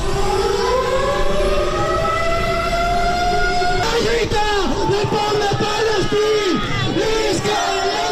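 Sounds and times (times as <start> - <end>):
air raid sirens wailing during bombing drill: 0.0 - 8.1
noisy crowd voices and shouts: 3.8 - 8.1.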